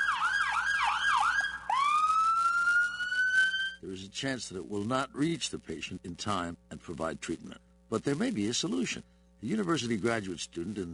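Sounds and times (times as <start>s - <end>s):
ambulance siren sounding in traffic: 0.0s - 3.8s
speech: 3.8s - 10.9s.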